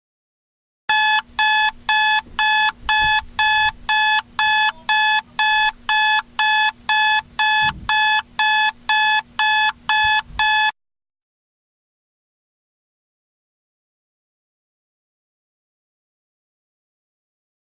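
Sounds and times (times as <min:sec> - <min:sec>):
alarm clock sound effect: 0:00.9 - 0:10.7.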